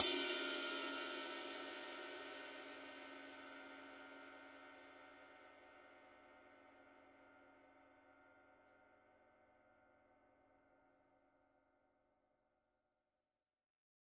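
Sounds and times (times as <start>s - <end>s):
medium ride cymbal played on the body: 0.0s - 3.2s.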